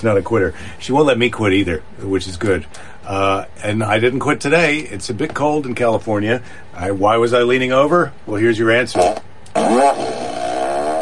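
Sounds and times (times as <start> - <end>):
speech: 0.0 - 10.1
loud buzzy fart noise from a novelty sound effect: 8.9 - 11.0.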